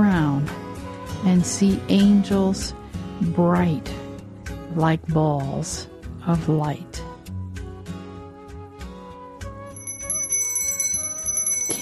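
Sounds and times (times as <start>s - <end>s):
speech: 1.2s - 4.0s, 4.7s - 7.1s
small bells jingling: 9.8s - 11.8s.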